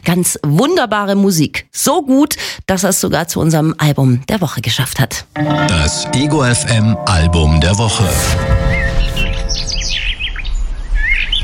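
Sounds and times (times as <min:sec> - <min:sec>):
speech: 0:00.0 - 0:09.3
bird singing bright warbling chirps and whistled notes: 0:08.6 - 0:11.4.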